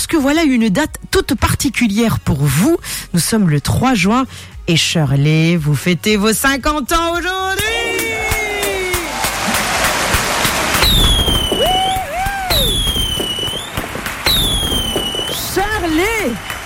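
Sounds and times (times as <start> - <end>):
speech: 0.0 - 7.7
fireworks dense crackling bursts: 8.0 - 16.6
whistling firework rockets for a 50th birthday: 8.3 - 16.6.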